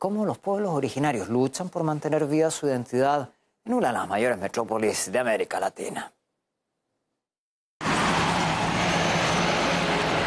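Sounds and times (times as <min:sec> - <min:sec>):
speech: 0:00.0 - 0:06.2
car traffic roar from nearby highways: 0:07.8 - 0:10.2.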